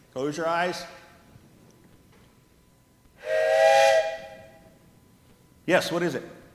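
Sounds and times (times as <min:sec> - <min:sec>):
speech: 0:00.2 - 0:01.0, 0:05.7 - 0:06.4
breathy train whistle blowing: 0:03.2 - 0:04.7.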